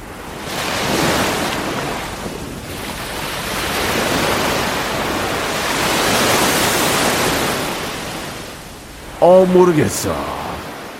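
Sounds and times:
ocean waves breaking on shore: 0.0s - 10.9s
speech: 9.2s - 10.4s.

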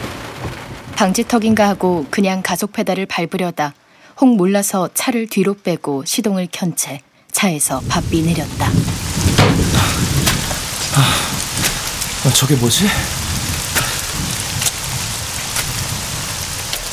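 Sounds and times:
heavy rain pouring: 0.0s - 3.0s, 7.6s - 16.9s
speech: 1.0s - 10.1s, 11.0s - 11.3s, 12.2s - 13.2s.

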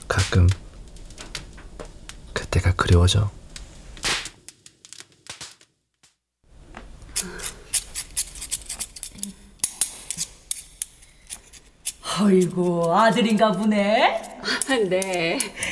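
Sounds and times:
speech: 0.1s - 0.6s, 2.5s - 3.4s, 12.2s - 15.6s
hair salon scissors snipping: 7.2s - 15.6s
laughter: 14.4s - 15.6s.

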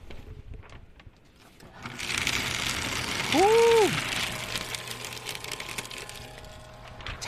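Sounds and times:
paper shredder shredding a sheet of A4 paper: 1.4s - 7.2s.

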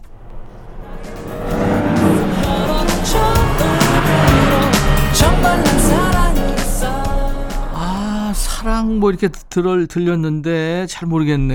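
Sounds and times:
tire squeal: 0.0s - 5.2s
car passing by: 0.0s - 8.8s
speech: 8.9s - 11.5s.

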